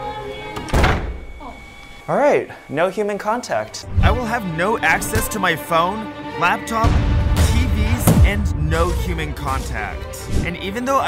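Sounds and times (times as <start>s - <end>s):
door closing with a dull solid thunk: 0.6s - 1.4s
speech: 2.1s - 7.1s, 8.3s - 11.0s.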